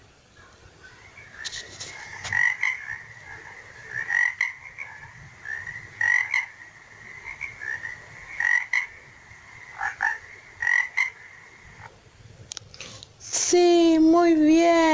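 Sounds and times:
faint outdoor background: 0.0s - 14.9s
frog croaking in rapid rattling bursts: 1.3s - 11.9s.

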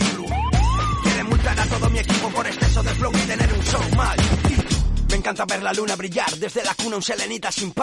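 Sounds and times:
police siren wailing: 0.0s - 1.4s
loud thumping hip-hop beat: 0.0s - 7.8s
speech: 5.3s - 7.8s.

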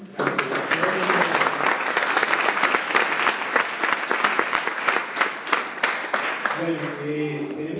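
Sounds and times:
crowd applauding: 0.0s - 7.1s
speech: 6.7s - 7.7s.

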